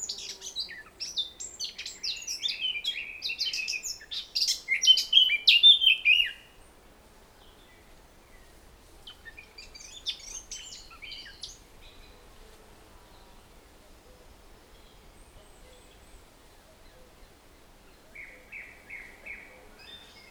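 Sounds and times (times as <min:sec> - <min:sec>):
Eurasian blackcap Sylvia atricapilla singing: 0:00.0 - 0:06.4.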